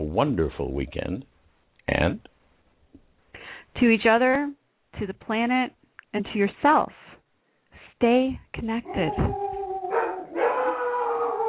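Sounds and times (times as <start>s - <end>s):
speech: 0.2s - 1.3s, 1.9s - 2.3s, 3.8s - 7.1s, 8.0s - 9.4s
dogs howling: 8.8s - 11.4s.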